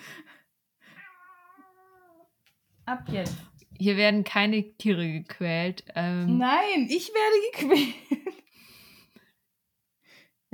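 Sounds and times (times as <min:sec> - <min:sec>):
tomcat meowing in complaint: 0:00.9 - 0:02.3
speech: 0:02.9 - 0:08.1.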